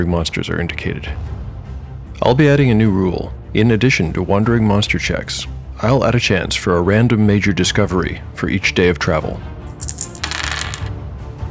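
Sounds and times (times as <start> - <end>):
speech: 0.0 - 1.3, 2.2 - 9.5
dice rolled across a hard surface for a game: 9.7 - 10.9.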